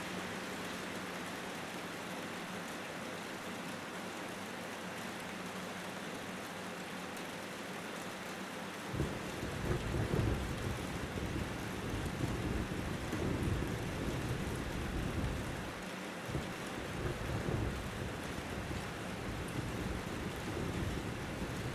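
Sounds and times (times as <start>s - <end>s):
soft rain: 0.0s - 21.7s
thunder rumbling: 8.9s - 21.7s.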